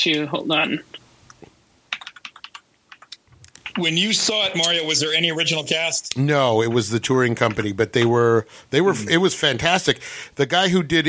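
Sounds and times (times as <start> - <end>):
speech: 0.0 - 1.0, 3.8 - 11.0
typing on a clicky computer keyboard: 1.9 - 3.8.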